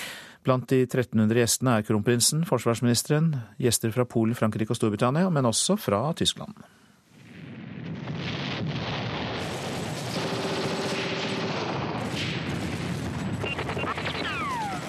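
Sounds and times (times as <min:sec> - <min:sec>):
speech: 0:00.4 - 0:06.8
WWII battle machine-gun bursts and rapid gunfire: 0:07.8 - 0:14.8
rising whistling tones: 0:13.4 - 0:14.8.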